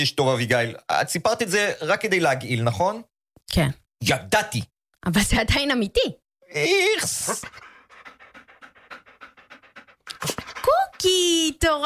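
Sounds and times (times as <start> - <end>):
speech: 0.0 - 7.7, 11.0 - 11.8
dog panting: 7.0 - 11.6.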